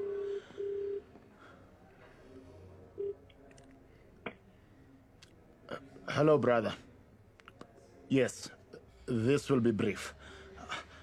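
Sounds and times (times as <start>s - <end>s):
telephone ringback tone purring through the line: 0.0s - 1.1s
speech: 6.2s - 6.9s, 8.1s - 10.4s.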